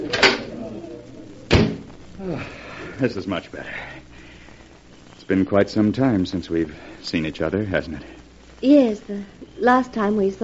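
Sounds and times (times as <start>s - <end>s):
low murmur: 0.0s - 10.4s
door opening onto a terrace with thumping knocks: 1.5s - 1.9s
speech: 2.2s - 4.1s, 5.3s - 10.4s.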